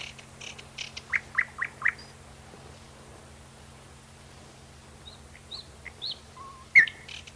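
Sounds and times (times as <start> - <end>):
nightingale song: 0.0 - 2.2, 5.0 - 7.3
low steady hum: 0.0 - 7.3.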